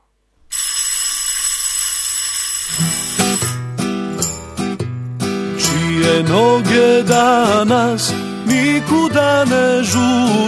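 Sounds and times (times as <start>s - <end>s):
electric school bell ringing with a harsh metallic buzz: 0.5s - 3.6s
music: 2.8s - 10.4s
speech: 6.2s - 10.4s.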